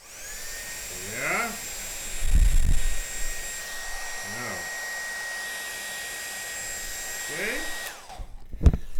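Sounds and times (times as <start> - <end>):
hair dryer blowing to melt ice: 0.0 - 8.9
person saying a word: 4.2 - 4.7.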